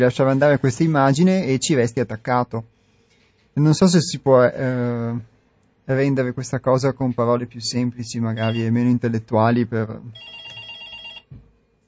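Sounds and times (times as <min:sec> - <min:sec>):
speech: 0:00.0 - 0:02.7, 0:03.6 - 0:05.3, 0:05.9 - 0:10.5
noise: 0:00.0 - 0:11.8
telephone ringing with electronic trill for incoming call: 0:08.4 - 0:08.8, 0:10.2 - 0:11.3.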